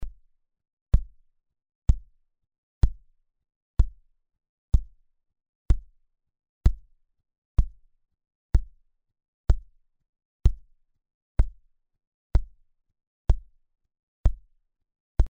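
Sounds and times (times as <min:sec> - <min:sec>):
kick drum: 0:00.0 - 0:00.2, 0:00.9 - 0:01.2, 0:01.9 - 0:02.2, 0:02.8 - 0:03.2, 0:03.8 - 0:04.1, 0:04.7 - 0:05.0, 0:05.7 - 0:06.0, 0:06.6 - 0:06.9, 0:07.6 - 0:07.9, 0:08.5 - 0:08.8, 0:09.5 - 0:09.8, 0:10.4 - 0:10.7, 0:11.4 - 0:11.7, 0:12.3 - 0:12.7, 0:13.3 - 0:13.6, 0:14.2 - 0:14.5.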